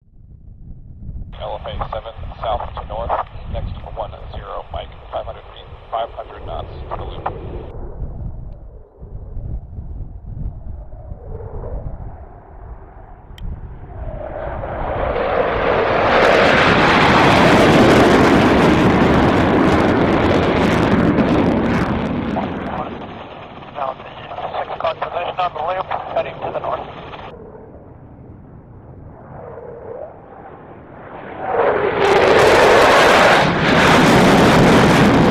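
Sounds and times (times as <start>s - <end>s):
radio chatter: 1.4s - 7.4s, 22.4s - 23.0s, 23.7s - 27.3s
jet engine: 1.4s - 35.2s.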